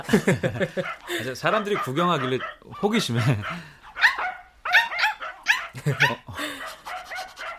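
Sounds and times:
laughter: 0.0 - 1.4, 2.9 - 3.6, 5.7 - 6.9
speech: 0.0 - 3.8, 5.8 - 6.5
small abandoned dog barking and yipping: 0.8 - 7.5
small abandoned dog whimpering: 3.2 - 7.5.

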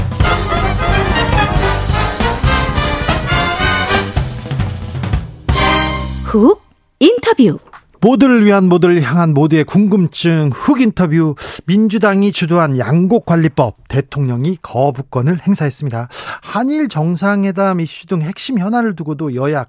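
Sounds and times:
sustained synth-keyboard intro: 0.2 - 4.3
full band playing pop song with driving drums and bright instruments: 0.2 - 4.7, 5.5 - 6.2
speech: 6.4 - 19.6.

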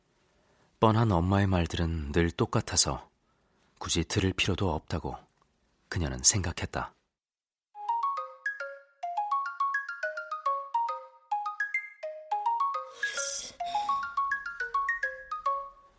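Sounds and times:
speech: 0.8 - 3.1, 3.8 - 5.2, 5.9 - 7.0
phone ringtone with bright repeating melodic chime pattern: 7.8 - 15.9.

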